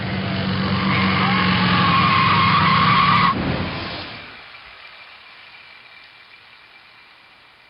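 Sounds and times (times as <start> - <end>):
car tires screeching while skidding on a rain-soaked road: 0.1 - 4.5.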